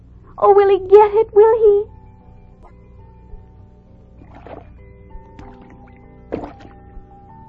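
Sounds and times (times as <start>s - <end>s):
soft steady hum: 0.0s - 7.4s
speech: 0.4s - 1.9s
water splashing and sloshing as a frog dives: 4.1s - 7.0s.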